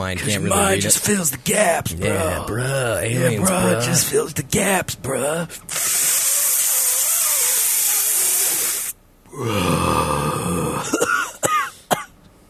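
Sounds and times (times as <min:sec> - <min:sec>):
speech: 0:00.0 - 0:06.1, 0:09.4 - 0:11.0
long steady airy hiss of inhaling smoke: 0:05.7 - 0:09.0
strained throaty groan: 0:09.3 - 0:11.0
person coughing after inhaling smoke: 0:10.6 - 0:12.2.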